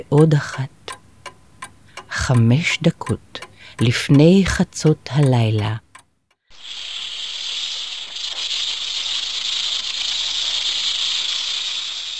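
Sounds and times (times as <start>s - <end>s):
speech: 0.0s - 0.8s, 2.2s - 5.8s
snake hissing while slithering: 6.6s - 12.1s.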